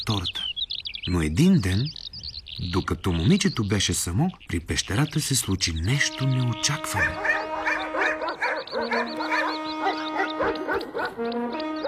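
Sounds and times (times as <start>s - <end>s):
speech: 0.0s - 0.4s, 1.0s - 2.0s, 2.6s - 7.3s, 8.8s - 9.2s, 10.5s - 11.8s
steady sustained musical tone: 5.9s - 11.8s
several dogs barking loudly: 6.8s - 11.8s.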